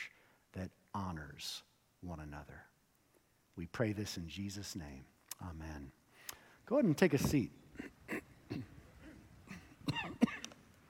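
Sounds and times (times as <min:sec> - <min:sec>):
speech: 0:00.6 - 0:02.8, 0:03.6 - 0:06.0, 0:06.7 - 0:08.7
person coughing in short harsh bursts: 0:07.7 - 0:10.5.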